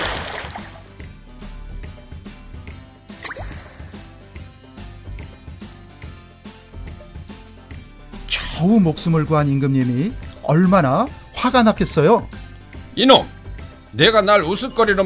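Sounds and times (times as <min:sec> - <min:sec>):
splash of falling into river water: 0:00.0 - 0:00.9
music with regular beat: 0:00.6 - 0:15.0
speech: 0:08.6 - 0:12.4, 0:13.0 - 0:13.4, 0:14.0 - 0:15.0.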